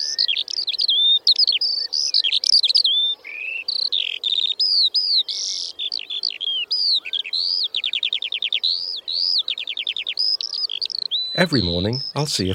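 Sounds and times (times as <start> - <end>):
skylark singing overhead: 0.0 - 12.5
speech: 11.4 - 12.5.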